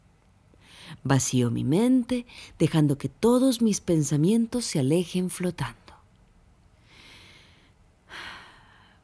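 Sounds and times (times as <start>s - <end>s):
speech: 1.0s - 5.8s
person lying on a mattress breathing in and out through the nose: 6.8s - 9.0s.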